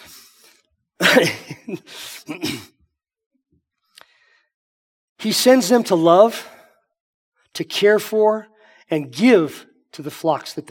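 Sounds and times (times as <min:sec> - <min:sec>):
person coughing: 0:01.0 - 0:02.8
speech: 0:01.2 - 0:02.7, 0:05.2 - 0:06.6, 0:07.6 - 0:10.6.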